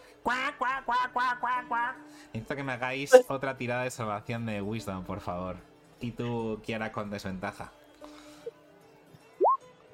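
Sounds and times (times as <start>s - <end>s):
speech: 0.2s - 7.8s
duck quacking in loud nasal honks: 0.3s - 2.0s.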